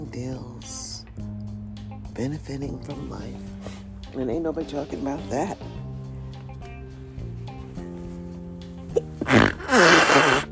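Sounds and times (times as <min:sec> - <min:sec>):
speech: 0:00.2 - 0:01.3, 0:02.2 - 0:05.8
loud sneeze: 0:08.9 - 0:10.4.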